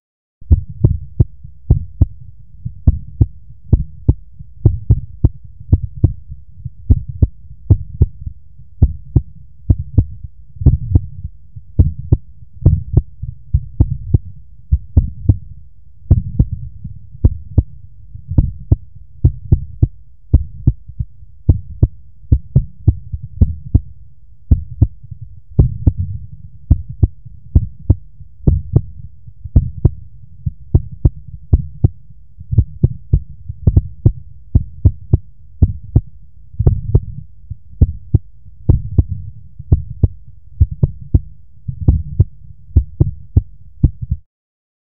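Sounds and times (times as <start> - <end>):
real human heartbeat: 0.4 - 44.2.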